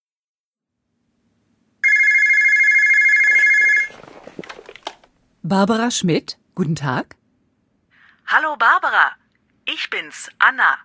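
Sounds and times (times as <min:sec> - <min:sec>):
telephone ringing with an electronic trill: 0:01.8 - 0:04.1
faint handling noises: 0:03.1 - 0:05.2
speech: 0:05.4 - 0:07.2, 0:08.3 - 0:10.8.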